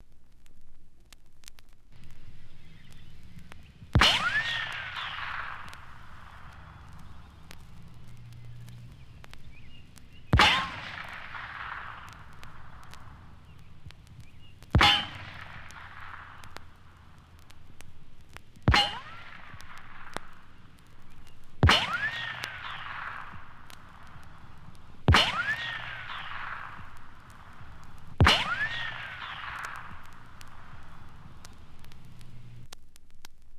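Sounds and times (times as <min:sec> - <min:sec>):
bullet ricochets: 0:02.6 - 0:32.6
pistol shots: 0:03.9 - 0:17.5, 0:18.6 - 0:31.8.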